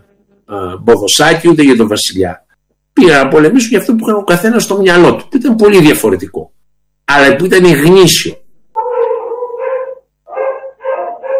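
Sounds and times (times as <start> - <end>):
speech: 0.5 - 2.4, 3.0 - 6.5, 7.1 - 8.4
dogs barking and yowling: 8.8 - 11.3.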